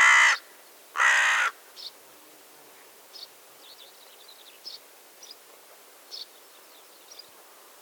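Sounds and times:
carrion crow giving rasping caws, Corvus corone: 0.0 - 1.6.

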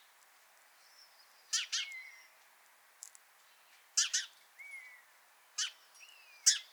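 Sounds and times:
house sparrow Passer domesticus harsh doubled chirps: 0.8 - 2.3, 4.0 - 6.7.

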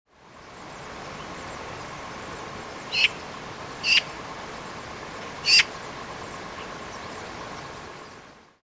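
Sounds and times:
steady background hiss: 0.1 - 8.6
Pica pica Eurasian magpie giving harsh rasping notes: 2.9 - 4.2, 5.4 - 5.7.

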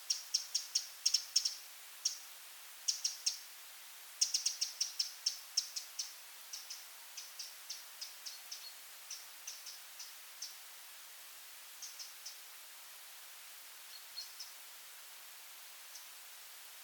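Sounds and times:
faint steady hiss: 0.0 - 16.8
Eurasian wren Troglodytes troglodytes giving sharp high ticking calls: 0.1 - 2.2, 2.9 - 3.4, 4.2 - 10.6, 11.8 - 12.4, 13.9 - 14.6.

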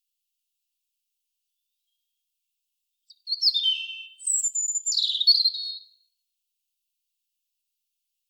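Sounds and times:
European robin Erithacus rubecula singing: 3.1 - 6.0.

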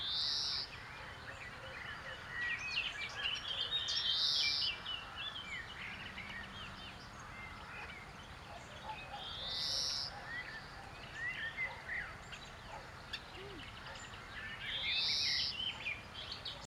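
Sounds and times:
birds twittering: 0.0 - 16.7
European greenfinch Chloris chloris nasal buzzy wheezes: 13.3 - 13.9.

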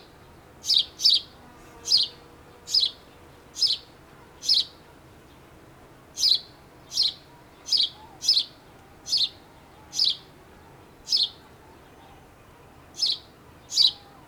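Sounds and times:
house sparrow Passer domesticus chirping: 0.6 - 4.8, 6.2 - 12.2, 13.0 - 14.1.

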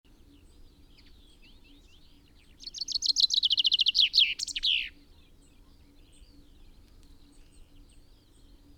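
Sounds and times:
common chaffinch Fringilla coelebs singing: 0.1 - 8.7.

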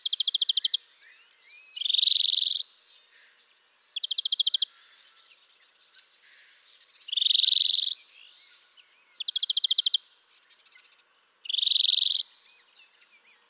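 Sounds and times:
European greenfinch Chloris chloris fast dry trill: 0.0 - 3.3, 6.0 - 13.4.

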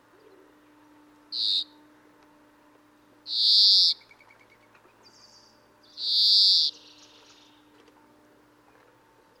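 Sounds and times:
speech: 1.3 - 1.7
European greenfinch Chloris chloris buzzy calls: 1.3 - 1.8, 3.3 - 7.7.

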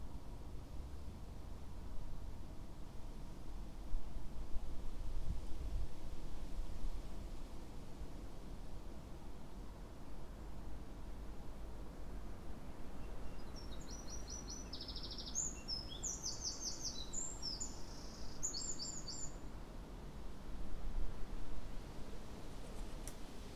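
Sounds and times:
continuous low background noise: 0.0 - 23.5
Eurasian wren Troglodytes troglodytes singing shrill trilled phrases: 13.2 - 19.4.

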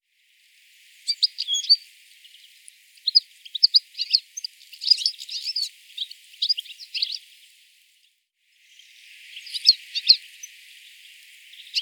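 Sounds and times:
European goldfinch twittering: 1.1 - 1.8, 3.0 - 7.2, 9.3 - 10.6, 11.5 - 11.8.

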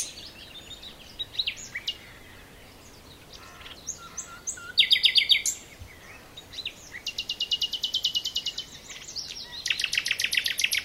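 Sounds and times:
common nightingale Luscinia megarhynchos song: 0.0 - 10.8.

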